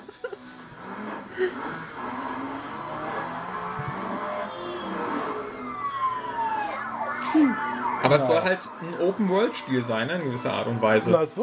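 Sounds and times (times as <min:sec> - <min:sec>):
laughter: 0:00.0 - 0:00.7
cars driving on a highway in a video game trailer: 0:00.0 - 0:11.4
speech: 0:07.4 - 0:11.4.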